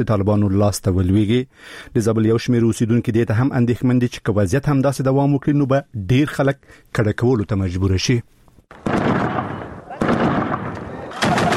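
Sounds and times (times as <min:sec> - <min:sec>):
speech: 0:00.0 - 0:09.0
gunfire from fighting between Afghan forces and Taliban in Kalat: 0:08.7 - 0:11.5.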